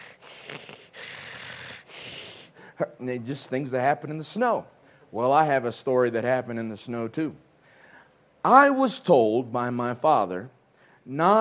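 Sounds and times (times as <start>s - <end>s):
person imitating wheezy breathing through a broken nose: 0.0s - 2.8s
speech: 2.8s - 7.5s, 8.4s - 11.3s.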